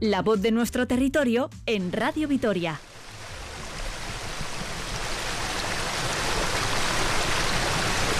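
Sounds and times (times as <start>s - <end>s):
speech: 0.0s - 2.9s
stream water flowing: 2.8s - 8.1s.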